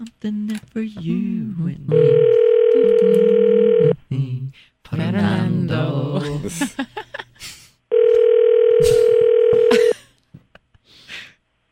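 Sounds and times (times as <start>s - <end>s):
speech: 0.2s - 4.3s, 4.9s - 7.6s
electronic ring tone on an outgoing phone call: 1.9s - 4.0s, 7.9s - 9.7s.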